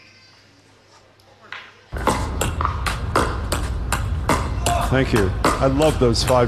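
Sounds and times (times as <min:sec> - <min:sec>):
activity noise: 0:00.0 - 0:06.4
paddles thwacking pickleballs: 0:01.9 - 0:06.4
speech: 0:04.9 - 0:06.4.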